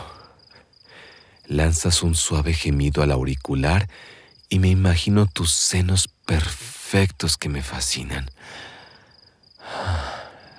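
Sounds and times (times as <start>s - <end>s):
person breathing: 0.0s - 1.5s, 3.9s - 4.5s, 8.4s - 10.5s
speech: 1.5s - 8.7s.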